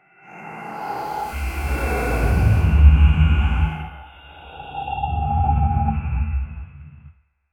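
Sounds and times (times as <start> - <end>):
dark biomechanical creature: 1.2 - 7.0.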